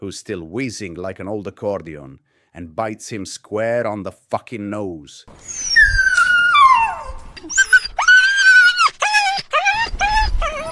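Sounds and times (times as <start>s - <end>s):
speech: 0.0s - 5.7s
dog whining high-pitched: 5.4s - 10.7s.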